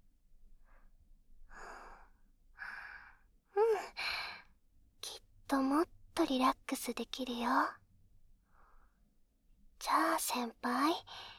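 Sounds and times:
slow deep breaths: 0.6 - 3.3, 8.4 - 9.1
speech: 5.5 - 7.8, 9.9 - 11.3.

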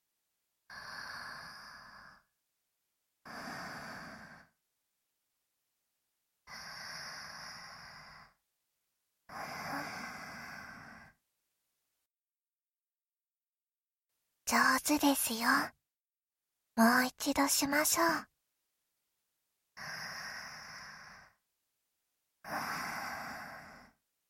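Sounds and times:
slow deep breathing in and out: 0.7 - 2.4, 6.5 - 8.4, 9.3 - 11.2, 19.8 - 21.4, 22.4 - 24.0
speech: 14.5 - 15.8, 16.8 - 18.3.

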